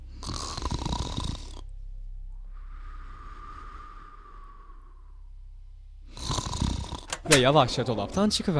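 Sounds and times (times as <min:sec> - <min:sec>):
giant snoring loudly while asleep: 0:00.0 - 0:01.7, 0:06.1 - 0:07.2
speech: 0:07.3 - 0:08.5.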